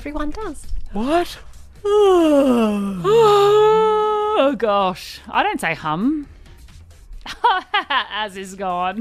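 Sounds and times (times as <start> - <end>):
speech: 0.0 - 6.4, 7.2 - 8.9
person yawning with a long voiced moan: 1.8 - 4.4.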